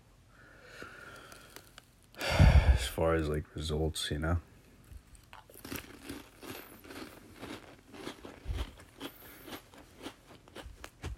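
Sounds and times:
person chewing crisp food: 1.0s - 1.9s, 4.9s - 11.1s
speech: 2.9s - 4.5s.

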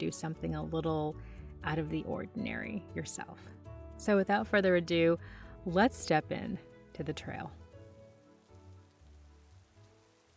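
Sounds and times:
speech: 0.0s - 7.6s
pouring rain on a surface at sunset: 7.5s - 10.3s.

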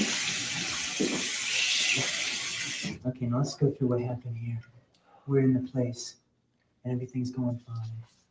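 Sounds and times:
water running from a tap into a sink: 0.0s - 3.0s
speech: 3.1s - 4.7s, 5.3s - 6.2s, 6.8s - 8.1s.

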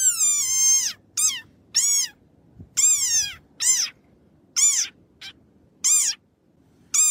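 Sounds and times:
angry desert rain frog squeaking: 0.0s - 2.2s, 2.8s - 4.0s, 4.6s - 6.2s.

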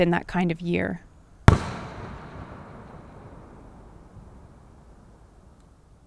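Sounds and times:
speech: 0.0s - 1.1s
firework blast at midnight: 1.5s - 5.4s
rumble of firework blast: 1.5s - 5.6s.

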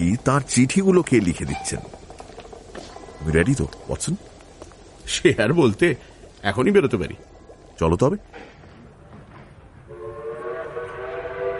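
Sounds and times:
speech: 0.1s - 2.0s, 3.2s - 4.3s, 5.1s - 8.5s
morning train whistle at a railway station: 9.9s - 11.5s.

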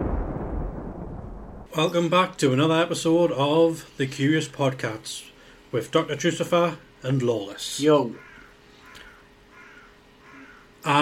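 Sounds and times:
speech: 1.7s - 8.3s
open-air noise: 1.7s - 11.0s
crow cawing in a field: 8.0s - 11.0s.

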